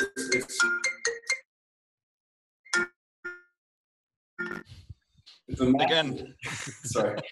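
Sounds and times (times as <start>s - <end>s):
phone electronic ringtone from an incoming call through a computer: 0.1s - 1.4s
speech: 0.3s - 0.8s, 5.5s - 7.2s
laughter: 5.6s - 7.2s.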